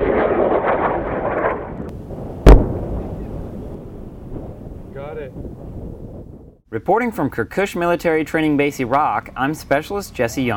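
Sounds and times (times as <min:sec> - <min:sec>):
TOW missile being fired at a military training base in Iraq: 0:00.0 - 0:06.0
speech: 0:06.7 - 0:10.5.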